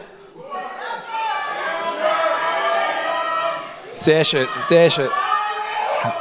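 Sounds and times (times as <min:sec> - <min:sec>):
audience at a live show shouting in unison: 0:00.0 - 0:06.1
speech: 0:04.0 - 0:05.2.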